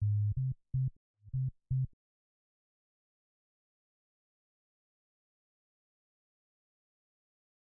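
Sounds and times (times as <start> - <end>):
bass intro: 0.0 - 1.9.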